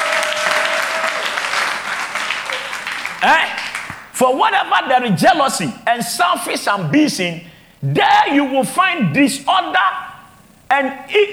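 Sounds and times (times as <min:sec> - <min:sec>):
crowd clapping hands: 0:00.0 - 0:04.1
speech: 0:03.2 - 0:03.5, 0:04.2 - 0:10.1, 0:10.7 - 0:11.3.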